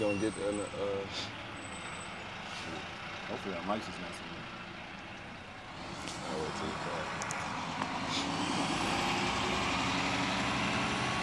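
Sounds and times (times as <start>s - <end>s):
speech: 0.0s - 1.5s, 2.6s - 4.6s, 6.3s - 7.4s
large garbage truck engine droning: 0.0s - 11.2s
garbage truck air brakes hissing: 0.9s - 1.4s, 8.0s - 8.5s.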